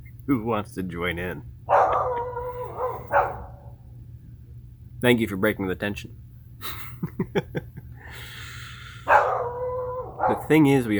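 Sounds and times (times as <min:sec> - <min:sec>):
low rumble: 0:00.0 - 0:10.9
speech: 0:00.3 - 0:02.2, 0:05.0 - 0:08.3, 0:10.5 - 0:10.9
dog howling: 0:01.7 - 0:03.7, 0:09.1 - 0:10.5.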